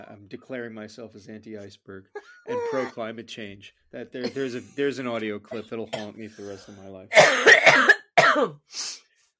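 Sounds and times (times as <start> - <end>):
speech: 0.0 - 9.1
person coughing: 4.2 - 4.9, 5.5 - 8.6.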